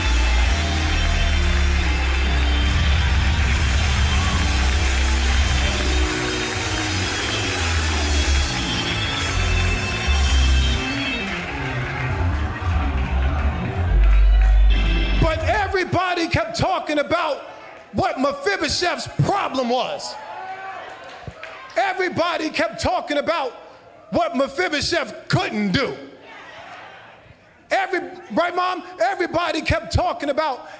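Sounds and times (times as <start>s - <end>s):
audience clapping: 0.0s - 16.3s, 20.8s - 22.4s
cheering: 0.0s - 22.6s, 26.1s - 28.6s
speech: 16.8s - 17.5s, 18.2s - 20.3s, 21.8s - 26.1s, 27.7s - 30.7s.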